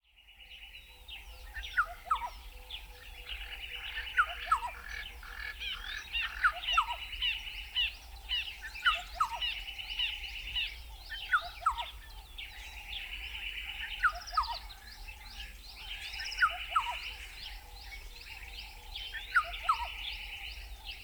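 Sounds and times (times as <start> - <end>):
black-headed oriole Oriolus larvatus: 0.4 - 21.0.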